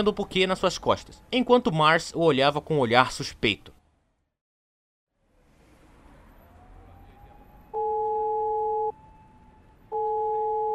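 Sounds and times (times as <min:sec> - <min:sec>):
speech: 0:00.0 - 0:03.8
ringback tones of an outgoing phone call: 0:07.7 - 0:09.0, 0:09.9 - 0:10.7.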